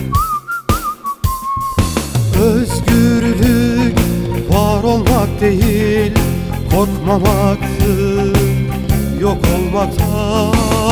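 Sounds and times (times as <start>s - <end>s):
soft human whistling a wavering tune: 0.0s - 2.0s
music with sharp percussive hits: 0.0s - 10.9s
speech: 6.8s - 8.4s, 9.2s - 10.9s.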